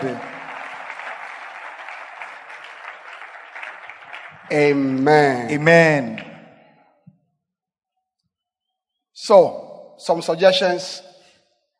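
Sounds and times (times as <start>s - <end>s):
audience clapping for the Lord: 0.0s - 6.4s
speech: 4.5s - 6.3s, 9.3s - 11.1s.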